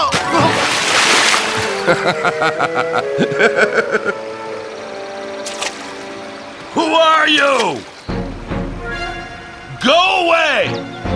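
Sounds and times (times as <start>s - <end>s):
splashing and sloshing of someone wading into a swift river: 0.0s - 2.1s, 5.4s - 6.2s
laughter: 1.6s - 4.3s
speech: 1.9s - 4.3s, 7.2s - 7.9s, 9.9s - 11.0s.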